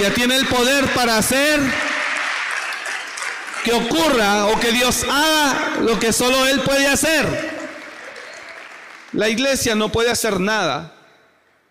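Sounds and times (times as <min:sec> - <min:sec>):
speech: 0:00.0 - 0:01.9, 0:03.6 - 0:07.6, 0:09.1 - 0:11.0
audience applause during a Spanish-language sermon: 0:01.1 - 0:05.1, 0:06.6 - 0:09.9.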